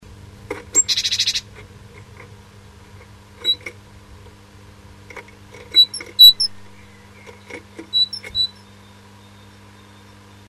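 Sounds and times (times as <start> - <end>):
female bird calling a male at a nest box: 0.5 - 1.6, 5.6 - 9.0.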